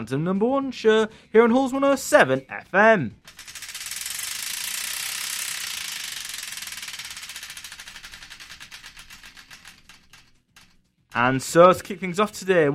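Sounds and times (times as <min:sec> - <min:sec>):
speech: 0:00.0 - 0:03.5, 0:11.2 - 0:12.7
prize wheel spinning with ratcheting clicks: 0:03.2 - 0:12.4.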